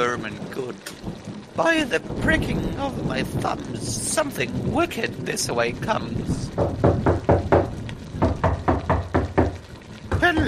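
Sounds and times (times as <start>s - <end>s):
speech: 1.6s - 6.9s
knocking on a wooden door: 6.5s - 10.4s.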